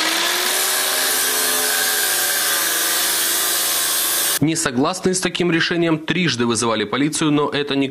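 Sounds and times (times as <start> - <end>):
angle grinder cutting through a metal safe: 0.0 - 4.4
speech: 4.4 - 7.8.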